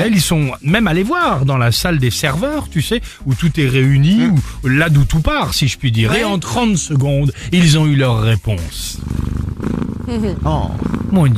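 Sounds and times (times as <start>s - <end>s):
speech: 0.0s - 9.3s, 10.1s - 11.3s
laughter: 6.0s - 6.4s
cat purring: 8.8s - 11.3s.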